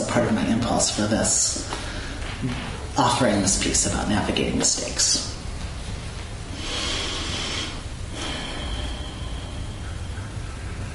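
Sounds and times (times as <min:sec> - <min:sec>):
constant hiss: 0:00.0 - 0:10.9
speech: 0:00.2 - 0:01.8, 0:02.4 - 0:05.3
deep breath drawn in: 0:06.5 - 0:10.3.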